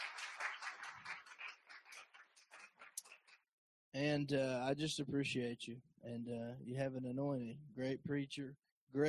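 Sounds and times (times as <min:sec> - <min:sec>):
crowd applauding: 0:00.0 - 0:03.4
speech: 0:03.9 - 0:09.0.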